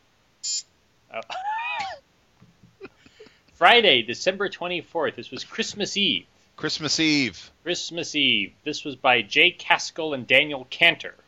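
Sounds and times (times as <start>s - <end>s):
short bright electronic buzzer tone: 0.4s - 0.7s
speech: 1.1s - 1.4s, 3.6s - 11.2s.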